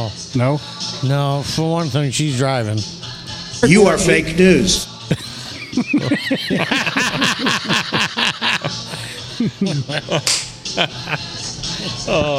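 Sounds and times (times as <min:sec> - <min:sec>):
speech: 0:00.0 - 0:03.0, 0:03.6 - 0:08.2, 0:09.4 - 0:12.3
lively voices: 0:03.6 - 0:10.1, 0:10.8 - 0:12.3
people laughing: 0:03.6 - 0:12.3
high five hand slap: 0:10.2 - 0:10.6.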